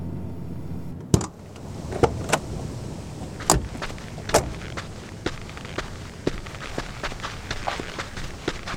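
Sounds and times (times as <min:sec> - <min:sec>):
car engine rumbling as the car parks: 0:00.0 - 0:08.7
soft footsteps of two people sneaking toward a house: 0:01.7 - 0:08.7.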